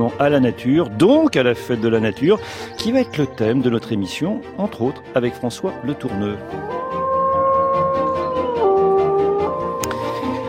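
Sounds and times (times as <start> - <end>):
speech: 0.0 - 6.8
wolf howling: 6.4 - 10.4.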